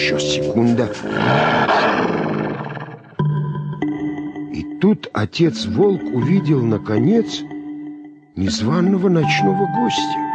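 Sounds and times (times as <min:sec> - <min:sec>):
speech: 0:00.0 - 0:02.3, 0:04.8 - 0:07.5, 0:08.4 - 0:10.2
wolf growling furiously in a dark cave: 0:00.9 - 0:03.2.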